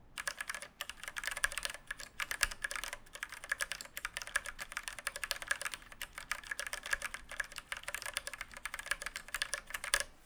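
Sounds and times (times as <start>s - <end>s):
mechanical keyboard with Cherry MX Red switches typing: 0.2s - 10.1s.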